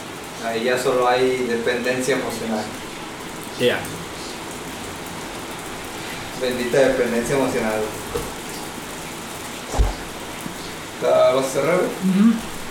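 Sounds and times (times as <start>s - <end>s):
steady dense rain falling: 0.0s - 12.6s
speech: 0.4s - 2.9s, 3.6s - 4.0s, 6.4s - 8.4s, 11.0s - 12.5s
dull thump: 9.7s - 10.2s.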